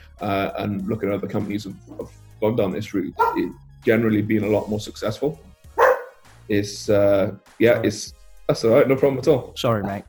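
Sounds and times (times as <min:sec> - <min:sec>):
speech: 0:00.2 - 0:05.5, 0:06.5 - 0:10.0
dog barking: 0:03.2 - 0:03.6, 0:05.8 - 0:06.2.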